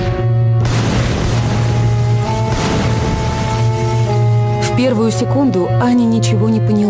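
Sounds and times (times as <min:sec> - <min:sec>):
grenade explosions: 0:00.0 - 0:04.9
speech: 0:04.8 - 0:06.8.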